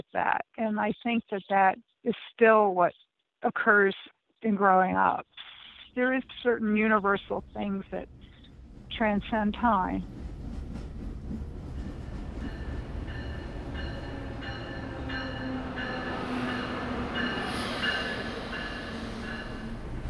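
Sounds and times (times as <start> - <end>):
speech: 0.1 - 8.2, 9.0 - 10.3
train rumbling along rails: 6.3 - 20.0
clickety-clack of train wheels on rails: 10.1 - 13.4.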